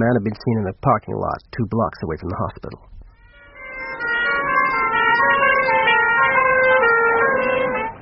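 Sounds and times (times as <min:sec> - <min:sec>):
speech: 0:00.0 - 0:03.0
police car sirens wailing: 0:03.4 - 0:08.0.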